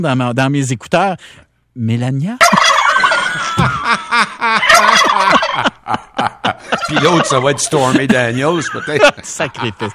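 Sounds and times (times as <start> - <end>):
speech: 0.0 - 2.6, 3.4 - 9.9
turkey gobbling: 2.4 - 3.8, 4.6 - 5.7, 6.8 - 7.8
laughter: 3.0 - 9.9.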